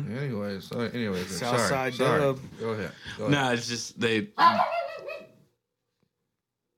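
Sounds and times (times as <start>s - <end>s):
speech: 0.2s - 4.8s
single dog bark: 4.4s - 5.4s.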